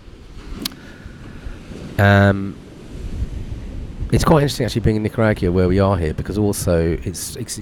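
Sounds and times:
ocean surf on an empty beach in Nicaragua: 0:00.0 - 0:07.5
strong wind roaring across the microphone on a hot beach in Nicaragua: 0:00.0 - 0:07.5
speech: 0:02.0 - 0:02.6, 0:04.1 - 0:07.5.

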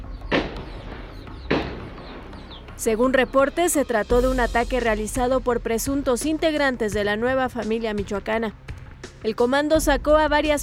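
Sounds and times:
distant gunshots in El Durazno Coyuca de Catalán Guerrero: 0:00.2 - 0:02.8
speech: 0:02.8 - 0:08.6, 0:09.2 - 0:10.6.

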